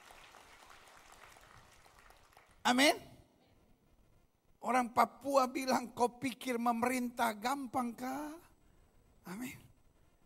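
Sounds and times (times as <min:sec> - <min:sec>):
crowd applauding in a large room: 0:00.0 - 0:02.6
speech: 0:02.7 - 0:03.1, 0:04.6 - 0:08.5, 0:09.3 - 0:09.7.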